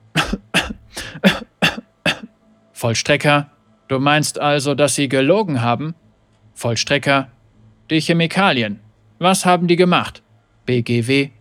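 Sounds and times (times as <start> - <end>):
harsh coughs: 0.2 - 2.3
speech: 2.8 - 6.0, 6.6 - 11.4.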